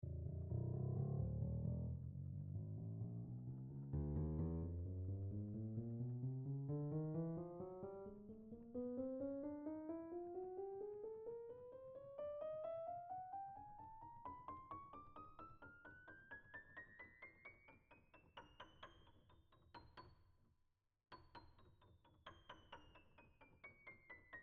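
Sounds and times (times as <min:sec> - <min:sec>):
grand piano scale: 0:00.0 - 0:17.7.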